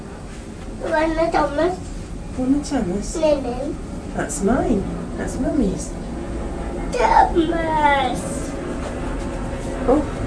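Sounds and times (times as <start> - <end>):
low-flying aeroplane roaring overhead: 0.0 - 10.2
speech: 0.8 - 6.0, 6.9 - 8.3, 9.8 - 10.2.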